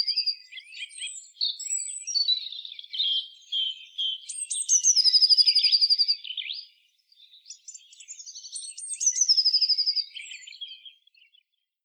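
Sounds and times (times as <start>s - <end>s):
Eurasian blue tit Cyanistes caeruleus song with chatter and trill: 0.0s - 11.8s.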